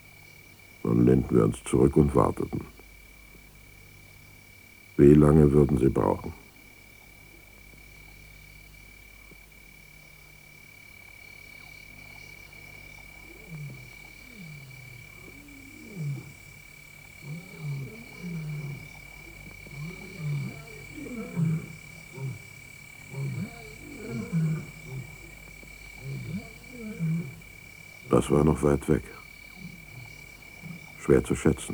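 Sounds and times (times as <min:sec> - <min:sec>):
lions roaring: 0:00.8 - 0:02.8, 0:05.0 - 0:06.5, 0:12.2 - 0:31.7
speech: 0:00.8 - 0:02.8, 0:05.0 - 0:06.4, 0:28.3 - 0:29.2, 0:31.1 - 0:31.7.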